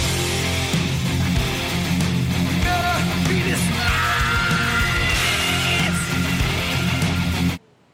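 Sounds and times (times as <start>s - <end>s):
loud dense live band with heavy drums and guitars: 0.0s - 7.6s
singer screaming in live song recording: 2.6s - 7.6s.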